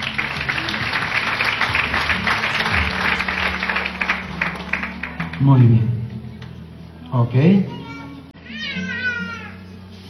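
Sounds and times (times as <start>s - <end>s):
audience clapping loudly: 0.0s - 5.6s
speech: 5.4s - 6.0s, 7.1s - 7.8s.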